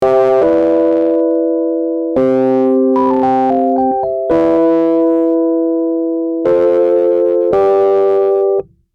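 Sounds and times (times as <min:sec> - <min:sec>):
distorted Rhodes electric piano: 0:00.0 - 0:08.7.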